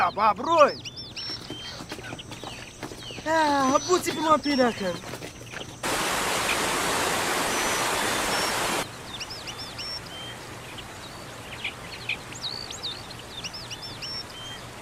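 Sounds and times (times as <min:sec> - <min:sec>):
speech: 0:00.0 - 0:00.9, 0:03.2 - 0:05.2
birds chirping: 0:00.0 - 0:14.8
river flowing through a forest: 0:05.8 - 0:12.3.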